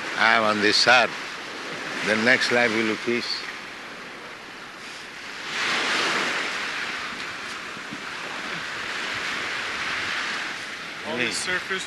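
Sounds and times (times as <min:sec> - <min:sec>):
ocean surf breaking on Waikiki Beach in Hawaii: 0:00.0 - 0:11.8
speech: 0:00.2 - 0:01.2, 0:02.0 - 0:03.4, 0:11.2 - 0:11.8.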